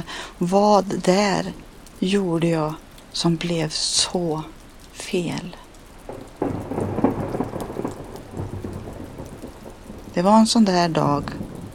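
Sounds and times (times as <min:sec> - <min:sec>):
steady rain: 0:00.0 - 0:11.7
speech: 0:00.4 - 0:06.2, 0:10.2 - 0:11.4
low rumble of thunder: 0:06.0 - 0:11.7.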